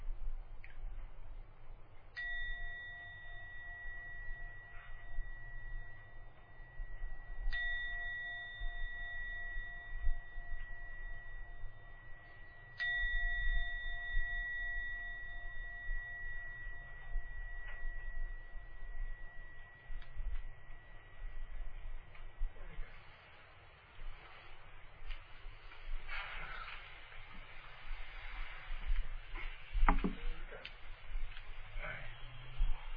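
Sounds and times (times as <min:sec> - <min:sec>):
low rumble: 0:00.0 - 0:32.9
meditation gong struck: 0:02.2 - 0:23.1.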